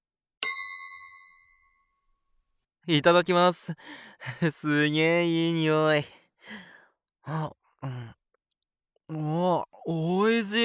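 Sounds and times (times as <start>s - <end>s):
wine glasses clinking in a toast: 0.4s - 1.8s
speech: 2.9s - 8.2s, 9.1s - 10.6s.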